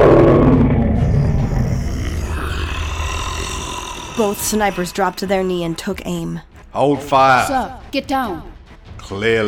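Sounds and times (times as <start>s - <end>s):
black winged lion roaring while landing: 0.0s - 6.4s
speech: 4.2s - 9.4s.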